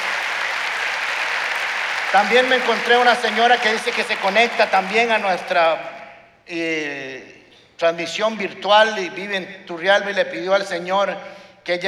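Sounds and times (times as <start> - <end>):
crowd clapping for visitors: 0.0 - 6.2
speech: 2.1 - 5.9, 6.5 - 11.8.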